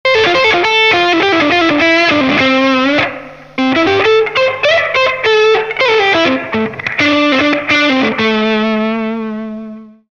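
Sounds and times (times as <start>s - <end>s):
rock guitar solo through guitar effects pedals: 0.1s - 10.1s.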